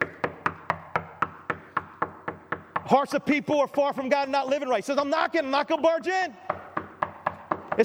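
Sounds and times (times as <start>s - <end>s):
knuckles knocking on wood: 0.0s - 3.0s, 6.4s - 7.8s
speech: 2.9s - 6.4s.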